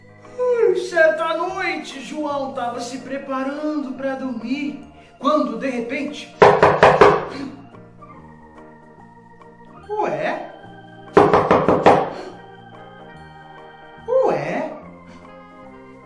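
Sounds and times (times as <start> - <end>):
soft sustained musical background: 0.0 - 16.0
speech: 1.2 - 6.4
knocks on a wooden door: 6.4 - 7.3, 11.2 - 12.2.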